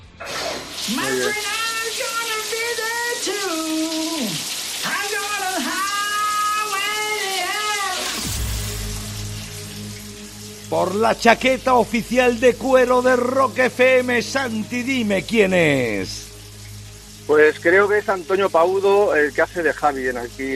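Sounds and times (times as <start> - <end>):
shower water running: 0.0 - 20.5
speech: 0.9 - 1.5, 10.7 - 16.3, 17.3 - 20.5
low rumble: 8.2 - 13.3.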